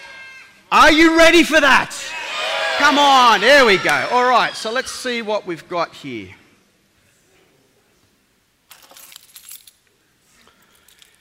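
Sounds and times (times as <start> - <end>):
speech: 0.8 - 2.2, 2.8 - 6.4
keys jangling: 8.7 - 9.9, 10.6 - 11.1.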